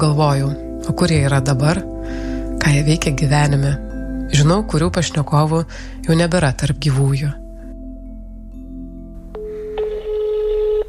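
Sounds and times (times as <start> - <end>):
speech: 0.0 - 7.4
telephone dial tone: 9.3 - 10.8.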